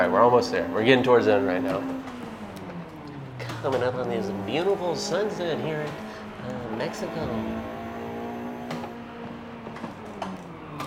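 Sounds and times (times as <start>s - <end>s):
speech: 0.0s - 2.1s, 3.6s - 7.8s
car engine drone in a racing video game as the motor blows on a slippery turn: 0.0s - 10.8s.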